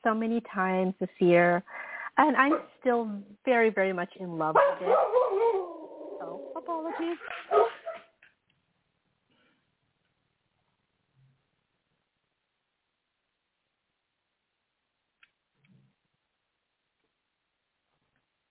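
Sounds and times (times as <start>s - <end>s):
speech: 0.0s - 5.2s, 6.6s - 7.7s
dog barking: 4.6s - 5.7s, 6.9s - 8.1s
dog yipping and whimpering: 4.6s - 8.1s.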